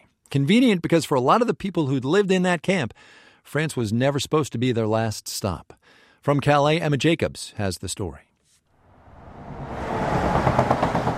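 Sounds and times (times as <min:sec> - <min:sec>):
speech: 0:00.3 - 0:08.3
large trucks passing on a highway under a bridge: 0:08.8 - 0:11.1.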